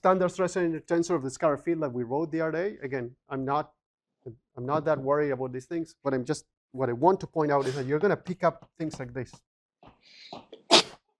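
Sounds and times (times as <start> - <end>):
speech: 0.0 - 10.5
person sneezing: 7.6 - 7.9, 10.5 - 11.0.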